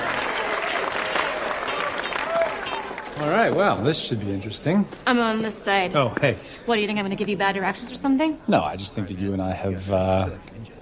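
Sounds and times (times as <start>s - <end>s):
hands clapping in a dense patter: 0.0s - 3.6s
speech: 3.2s - 10.5s.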